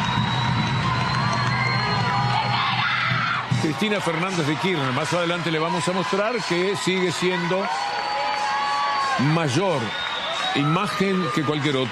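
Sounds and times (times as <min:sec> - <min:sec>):
scattered whoops and shouts from the crowd: 0:00.0 - 0:03.6, 0:07.2 - 0:11.8
large crowd roaring and cheering in an ovation: 0:00.0 - 0:11.8
speech: 0:03.6 - 0:08.0, 0:09.2 - 0:11.8.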